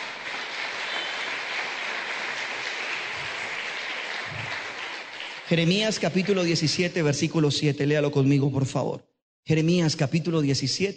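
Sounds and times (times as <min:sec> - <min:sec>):
church audience applauding: 0:00.0 - 0:06.8
speech: 0:05.5 - 0:10.9.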